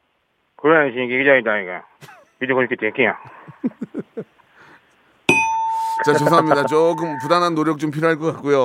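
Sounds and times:
speech: 0:00.6 - 0:04.3, 0:06.0 - 0:08.6
laughter: 0:03.2 - 0:04.4
quiz show failure bell: 0:05.3 - 0:07.8.

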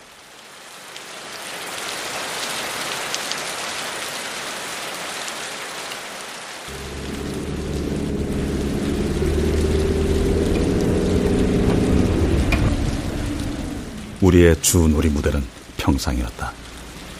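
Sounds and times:
steady dense rain: 0:00.0 - 0:17.1
deep continuous low rumble with a droning hum: 0:06.7 - 0:15.8
speech: 0:14.3 - 0:16.6.

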